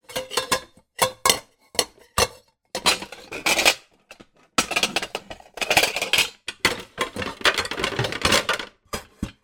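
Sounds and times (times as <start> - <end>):
household pots and pans rummage movements: 0.0 - 9.4.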